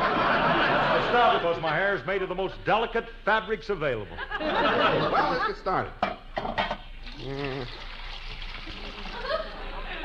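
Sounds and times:
laughter: 0.0 - 1.8, 4.0 - 5.9, 8.6 - 10.0
speech: 1.2 - 6.6, 7.2 - 7.9
liquid dyes poured into a pot of boiling water: 7.0 - 9.4
person murmuring: 7.1 - 7.8.

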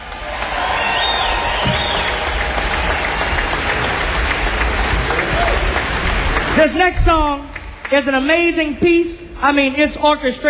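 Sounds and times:
people shouting and cheering: 0.0 - 6.8
sustained applause from a large audience: 0.0 - 6.8
speech: 6.6 - 10.4.

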